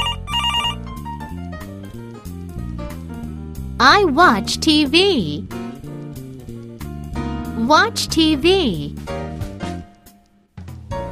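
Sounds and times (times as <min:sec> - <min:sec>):
warbling telephone bell ringing: 0:00.0 - 0:00.8
musical backing of stepping bass and keyboard notes: 0:00.0 - 0:10.0
speech: 0:03.8 - 0:05.6, 0:07.7 - 0:09.2.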